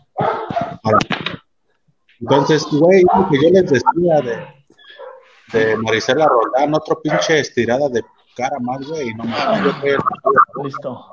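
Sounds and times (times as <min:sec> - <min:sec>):
dog barking and yelping inside the house behind closed door: 0:00.1 - 0:00.9, 0:02.2 - 0:03.6, 0:04.3 - 0:05.3, 0:06.1 - 0:07.4
speech: 0:00.8 - 0:01.2, 0:02.2 - 0:04.6, 0:05.5 - 0:11.1.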